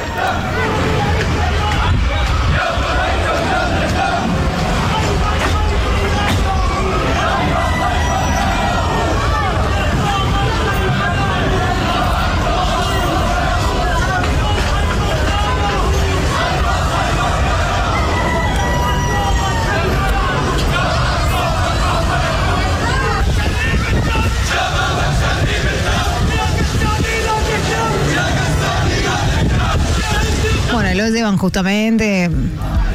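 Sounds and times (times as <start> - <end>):
crowd chanting and shouting at a funeral for a militant leader: 0.0 - 32.9
speech: 31.4 - 32.6.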